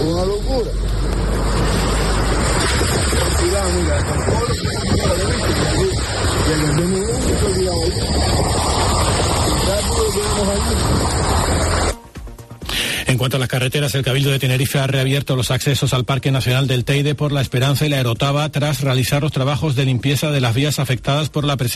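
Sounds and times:
rushing floodwater sweeping past cars: 0:00.0 - 0:12.0
indistinct voices: 0:02.6 - 0:12.0
speech: 0:13.2 - 0:21.7.

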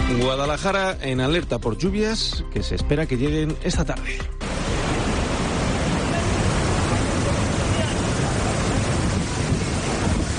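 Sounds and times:
speech: 0:00.1 - 0:04.4
reservoir spillway releasing water: 0:04.4 - 0:10.3.

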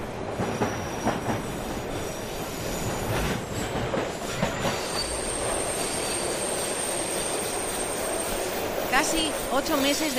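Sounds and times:
metro train wheels rumbling on rebuilt rails in flood-ravaged Valencia: 0:00.0 - 0:10.1
metro train wheel squeal: 0:04.7 - 0:08.4
speech: 0:09.0 - 0:10.1.

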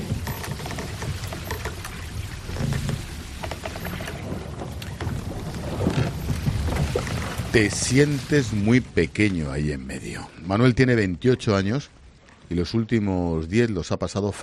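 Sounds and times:
waves splashing against a boat's bow at sea: 0:00.0 - 0:09.5
speech: 0:07.6 - 0:14.4.

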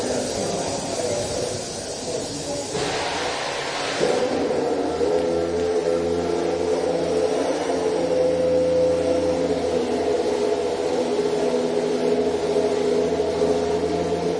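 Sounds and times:
Honda Formula 1 engine idling after start-up: 0:00.0 - 0:14.3.

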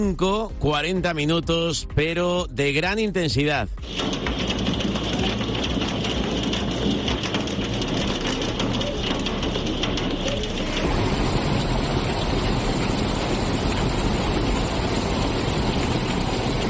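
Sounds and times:
speech: 0:00.0 - 0:04.5
heavy rain and hail pounding down: 0:03.8 - 0:16.6.

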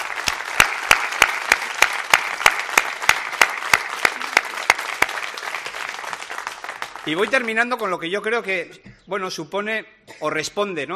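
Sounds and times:
large audience applauding: 0:00.0 - 0:07.7
sharper evenly spaced claps: 0:00.0 - 0:07.9
speech: 0:07.1 - 0:10.9.

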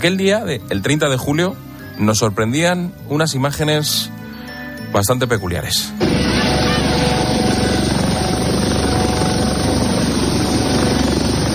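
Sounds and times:
speech: 0:00.0 - 0:04.2, 0:04.9 - 0:06.2
customs helicopter rotor chopping over a beach: 0:06.0 - 0:11.5.

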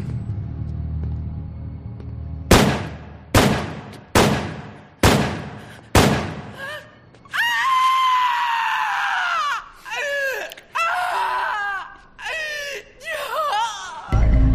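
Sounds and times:
gunshots: 0:02.5 - 0:06.6
frantic wailing cries: 0:06.6 - 0:14.2
long anguished scream: 0:06.6 - 0:14.2.

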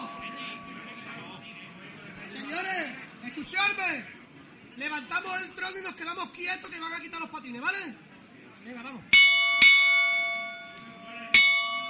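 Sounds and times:
church bell striking: 0:00.0 - 0:01.7, 0:09.2 - 0:11.8
faint murmur of noise: 0:00.0 - 0:11.8
speech: 0:03.4 - 0:04.2, 0:04.8 - 0:08.0, 0:08.6 - 0:09.2.

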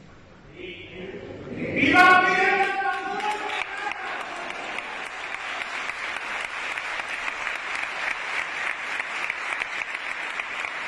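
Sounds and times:
voices in a church: 0:00.5 - 0:04.8
brotherhood members applauding in a reverberant church: 0:02.4 - 0:10.8.

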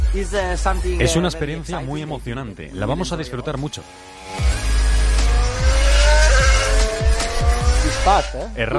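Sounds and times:
speech: 0:00.2 - 0:04.5, 0:08.0 - 0:08.7
racing motorcycle engine screaming at high revs on a track: 0:03.0 - 0:08.7.

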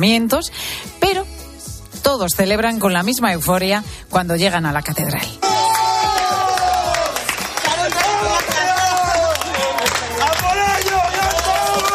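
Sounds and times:
speech: 0:00.0 - 0:01.2, 0:02.0 - 0:05.5
group of children shouting and squealing excitedly: 0:05.4 - 0:11.9.

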